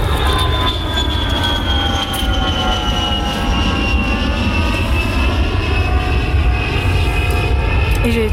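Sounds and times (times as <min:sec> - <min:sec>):
jet engine roar of an airplane taking off: 0:00.0 - 0:08.3.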